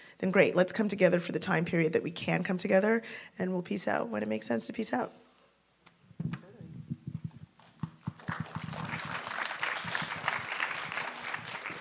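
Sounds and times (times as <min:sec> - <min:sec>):
speech: 0:00.2 - 0:05.2
audience applause during a question-and-answer session: 0:07.6 - 0:11.7.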